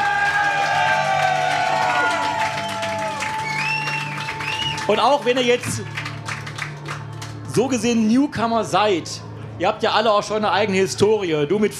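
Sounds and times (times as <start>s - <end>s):
crowd applauding and cheering: 0.0s - 7.9s
whoops and whistles: 2.0s - 5.0s
speech: 4.9s - 6.0s, 7.6s - 11.7s.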